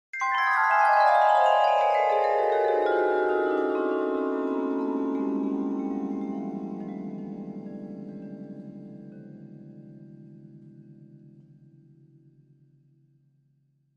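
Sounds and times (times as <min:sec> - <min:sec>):
vibraphone note D played with mallets: 0:00.2 - 0:11.1.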